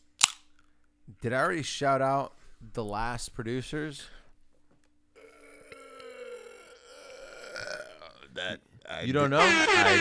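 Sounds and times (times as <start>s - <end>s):
speech: 1.2s - 4.2s, 8.5s - 9.9s
gurgly attempted burp: 5.2s - 8.6s
laughter: 8.4s - 9.9s.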